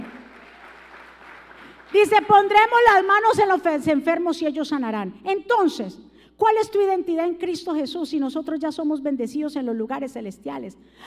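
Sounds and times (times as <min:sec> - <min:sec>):
crowd applauding loudly: 0:00.0 - 0:02.0
speech: 0:01.9 - 0:11.0.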